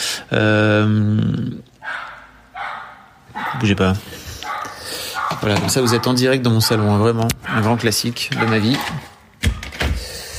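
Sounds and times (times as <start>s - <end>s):
speech: 0.3s - 2.0s, 3.5s - 4.2s, 5.3s - 9.2s
neighbor's dog barking: 1.8s - 3.8s, 4.4s - 9.2s.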